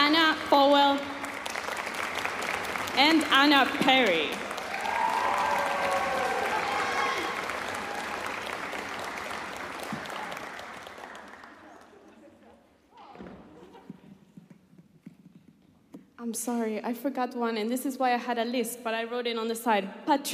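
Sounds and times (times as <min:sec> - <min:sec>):
audience applause: 0:00.0 - 0:12.5
speech: 0:03.1 - 0:04.4, 0:16.3 - 0:20.3.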